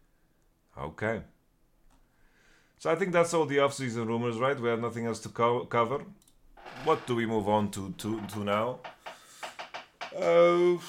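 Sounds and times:
speech: 0.8s - 1.4s, 2.8s - 8.9s, 10.1s - 10.8s
chair creaking under a sitting person's shifting weight: 6.6s - 10.3s.

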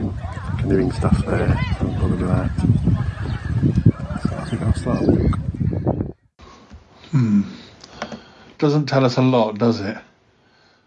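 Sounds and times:
Canada geese honking and chattering by a lake on a grey breezy day: 0.1s - 5.9s
speech: 0.7s - 5.4s, 7.1s - 7.5s, 8.6s - 10.1s.

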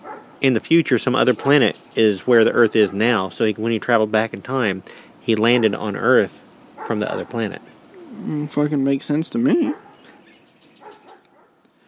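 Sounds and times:
dog barking and yipping: 0.0s - 0.4s, 1.2s - 1.8s, 2.5s - 3.3s, 5.4s - 7.6s, 9.6s - 11.6s
quiet hissy background: 0.0s - 11.8s
speech: 0.4s - 9.9s.

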